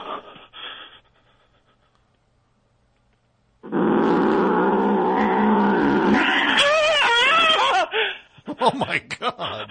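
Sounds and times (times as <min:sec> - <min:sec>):
big cat roaring and snarling while attacking: 0:04.6 - 0:06.6
cat growling: 0:04.6 - 0:07.2
laughter: 0:07.3 - 0:09.6.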